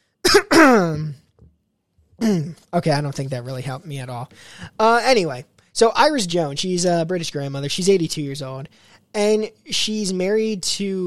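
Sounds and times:
throat-clearing cough: 0.2s - 1.1s
speech: 2.2s - 11.0s
faint breath: 4.3s - 4.8s, 8.7s - 9.1s.

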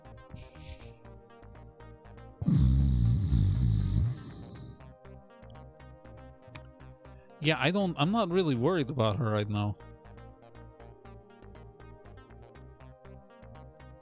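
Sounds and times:
music: 0.0s - 13.9s
person snoring while unconscious: 0.4s - 1.0s, 2.4s - 4.8s
speech: 7.4s - 9.9s.

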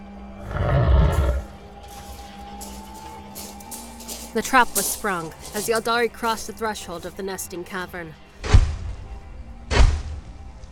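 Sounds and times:
creature roaring and growling in a vast cavern: 0.4s - 1.6s
speech: 4.4s - 8.2s.

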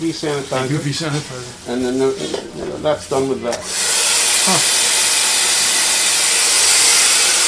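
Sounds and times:
speech: 0.0s - 4.8s
blow dryer running: 3.5s - 7.4s.

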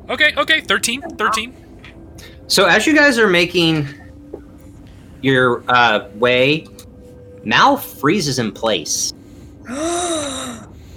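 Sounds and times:
speech: 0.1s - 1.6s, 2.2s - 4.0s, 5.2s - 6.8s, 7.4s - 10.6s
person gasping sharply: 9.6s - 10.9s.

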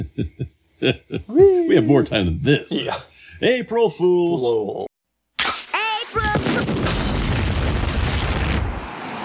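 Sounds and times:
laughter: 0.0s - 1.8s
speech: 0.0s - 4.9s
loud explosion sound effect: 6.2s - 9.0s.

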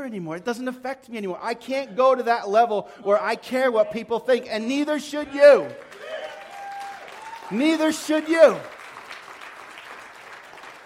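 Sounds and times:
speech: 0.0s - 6.0s, 7.5s - 8.8s
audience applause: 5.7s - 10.8s.

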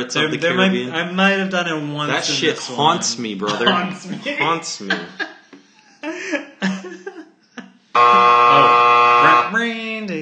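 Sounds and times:
speech: 0.0s - 5.3s
short coughing laugh-like vocal bursts: 2.8s - 5.2s, 5.8s - 7.2s
game buzzer blaring a steady harsh tone: 8.0s - 9.6s.

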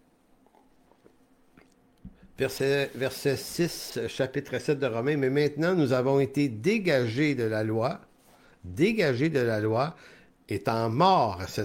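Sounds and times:
person gulping a drink: 0.2s - 2.4s
person taking a small sip of a drink: 0.2s - 2.4s
soft wet mouth clicks: 0.4s - 2.3s
speech: 2.4s - 11.6s.

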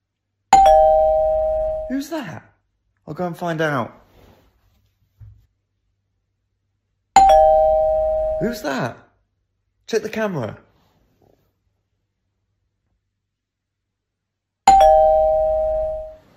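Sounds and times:
doorbell ringing: 0.6s - 2.0s, 7.2s - 8.6s, 14.7s - 16.3s
speech: 1.9s - 2.5s, 3.1s - 4.0s, 8.4s - 9.0s, 9.9s - 10.6s.

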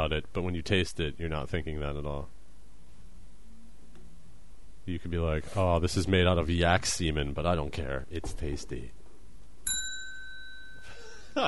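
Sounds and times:
speech: 0.1s - 2.4s, 4.8s - 9.0s
bell strike: 9.7s - 11.2s
laughter: 10.9s - 11.4s.

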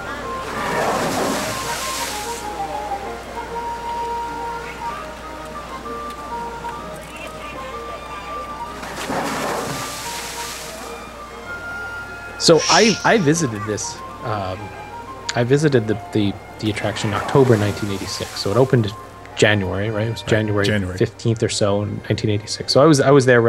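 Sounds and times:
faint tonal music: 0.0s - 23.4s
water spraying out like a crashing wave: 0.4s - 2.5s, 8.9s - 10.9s, 12.4s - 13.7s, 17.1s - 18.8s
speech: 12.5s - 14.8s, 15.4s - 23.4s.

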